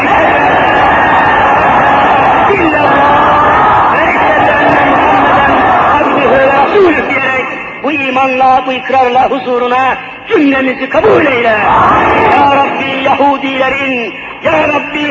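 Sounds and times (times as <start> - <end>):
large crowd shouting a religious phrase in unison: 0.0 - 7.7, 11.6 - 13.0
speech: 8.2 - 15.0.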